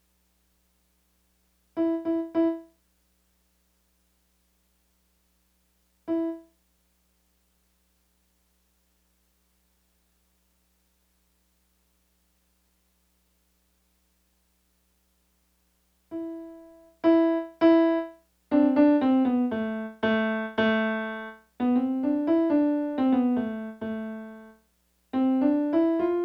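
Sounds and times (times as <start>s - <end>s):
Casio CDP-100 digital piano: 1.8s - 2.7s, 16.1s - 24.6s, 25.2s - 26.2s.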